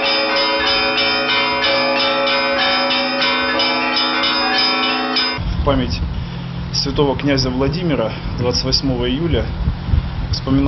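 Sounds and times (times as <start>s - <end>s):
festive peal of church bells: 0.0s - 5.4s
speech: 5.7s - 6.2s, 6.8s - 9.7s, 10.4s - 10.6s.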